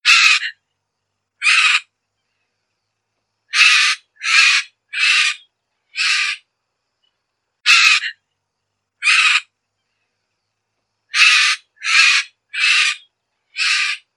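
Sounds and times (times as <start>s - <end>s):
Maracana Guacu calling: 0.0s - 0.6s, 1.4s - 1.9s, 3.5s - 6.5s, 7.6s - 8.2s, 9.0s - 9.5s, 11.1s - 14.1s.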